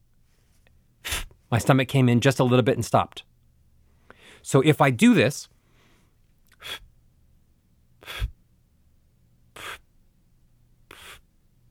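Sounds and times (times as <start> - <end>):
short puffs of breath blown out to extinguish candles: 0.4 - 1.4, 3.9 - 4.5, 5.6 - 6.9, 8.0 - 8.4, 9.6 - 9.9, 10.9 - 11.3
speech: 1.5 - 3.3, 4.4 - 5.5, 6.6 - 6.9.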